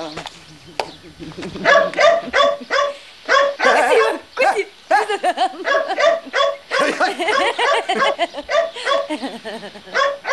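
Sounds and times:
laughter: 0:00.6 - 0:02.7, 0:04.9 - 0:10.0
speech: 0:01.2 - 0:02.4
dog barking: 0:01.6 - 0:04.2, 0:05.6 - 0:09.3, 0:09.9 - 0:10.3.

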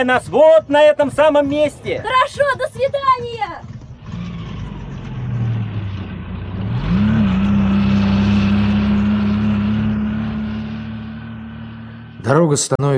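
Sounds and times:
speech: 0:00.0 - 0:03.7, 0:12.3 - 0:12.9
car engine revving with wheels spinning in snow: 0:03.6 - 0:12.7.

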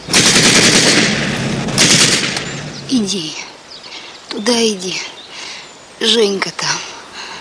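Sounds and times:
loud sustained rapid gunfire in a wartime film scene: 0:00.0 - 0:02.8
speech: 0:02.9 - 0:03.4, 0:04.4 - 0:05.2, 0:06.0 - 0:06.9.

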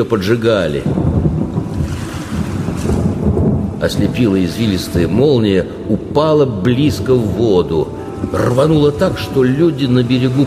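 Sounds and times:
speech: 0:00.0 - 0:01.1, 0:03.8 - 0:10.4
gusting wind: 0:00.0 - 0:10.4
stormy sea waves with high swells throwing up spray: 0:00.0 - 0:10.4.

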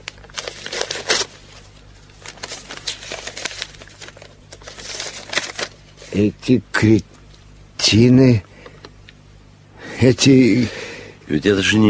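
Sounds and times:
paper packet crinkling and rustling as it is torn open and unfolded: 0:00.0 - 0:06.3
speech: 0:06.2 - 0:07.1, 0:07.9 - 0:08.5, 0:10.0 - 0:11.8.

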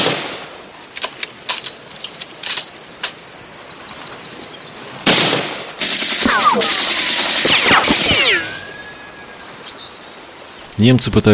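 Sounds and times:
gunshots fired at enemy soldiers: 0:00.0 - 0:00.5, 0:05.0 - 0:08.7
ringing whistling tones: 0:05.9 - 0:09.7.

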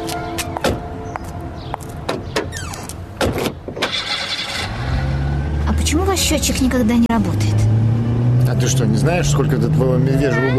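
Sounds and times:
car engine rumbling into life as the vehicle gets moving: 0:00.7 - 0:10.5
car doors clunking: 0:02.0 - 0:04.5
speech: 0:06.2 - 0:07.7, 0:08.6 - 0:10.5.

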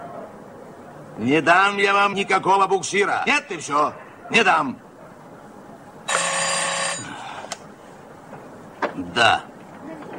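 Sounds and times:
speech: 0:01.2 - 0:04.8, 0:09.2 - 0:09.5
old telephone bell ringing in a port fleet office: 0:06.1 - 0:07.1.

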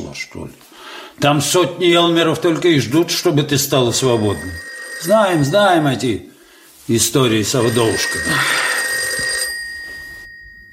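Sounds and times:
speech: 0:00.2 - 0:06.3, 0:06.9 - 0:08.7
telephone bell ringing: 0:03.8 - 0:06.2, 0:07.3 - 0:10.7.

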